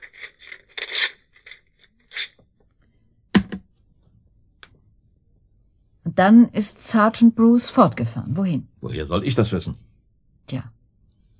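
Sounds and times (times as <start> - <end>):
two sheets of paper being torn up: 0.0 - 2.4
speech: 6.2 - 9.9, 10.5 - 10.8.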